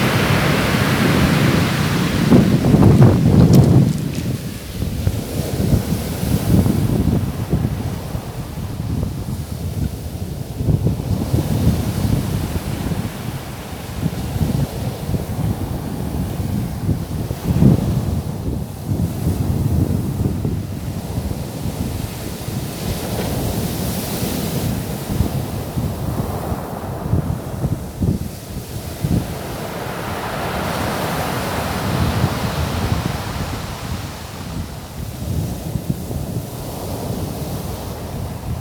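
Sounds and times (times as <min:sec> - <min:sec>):
waves washing along a rocky shore in Taitung: 0:00.0 - 0:38.5
wind gusts buffeting the microphone: 0:00.0 - 0:38.5.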